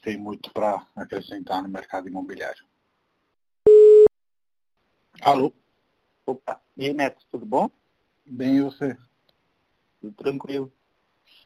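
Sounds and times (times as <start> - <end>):
speech: 0.0 - 2.7, 5.2 - 5.6, 6.3 - 9.1, 10.0 - 10.8
short steady telephone tone while placing a call: 3.7 - 4.1.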